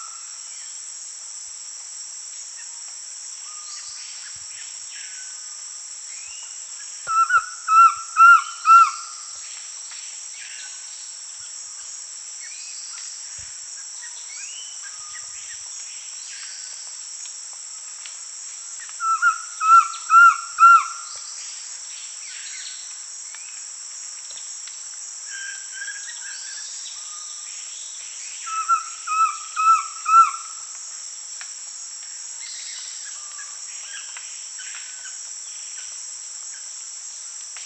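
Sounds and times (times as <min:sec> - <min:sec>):
Collared Trogon Trogon collaris calling in Peru: 0:07.1 - 0:09.1, 0:19.0 - 0:21.0, 0:28.5 - 0:30.5.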